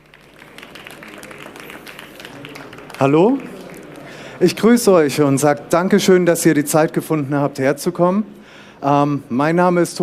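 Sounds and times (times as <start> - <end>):
audience applause welcoming a speaker at a talk on copyright reform: 0.0 - 4.8
speech: 3.0 - 3.5, 4.4 - 10.0.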